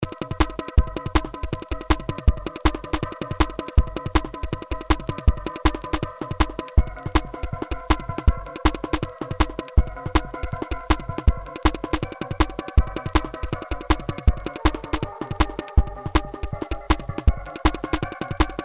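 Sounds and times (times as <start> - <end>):
rhythm: 0.0 - 18.6.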